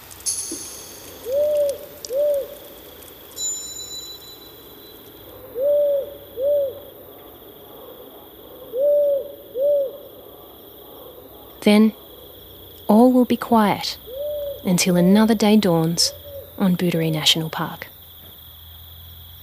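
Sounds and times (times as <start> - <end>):
faint insect chirring at night: 0.0 - 19.4
powerful owl deep slow double hoot: 1.2 - 2.7, 5.3 - 7.0, 7.7 - 11.6, 14.1 - 14.7
speech: 11.7 - 12.0, 13.2 - 14.0, 14.6 - 17.9.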